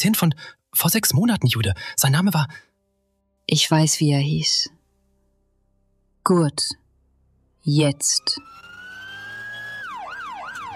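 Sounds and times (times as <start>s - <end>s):
speech: 0.0s - 2.7s, 3.5s - 4.8s, 6.3s - 6.8s, 7.6s - 8.6s
ambulance siren racing onto a motorway at night in the rain: 7.8s - 10.7s.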